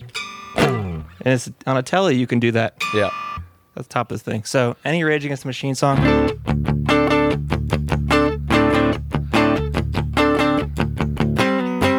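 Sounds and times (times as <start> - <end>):
unamplified electric guitar playing a fast chugging riff: 0.0 - 1.2, 6.0 - 11.9
speech: 1.2 - 3.2, 3.8 - 7.0.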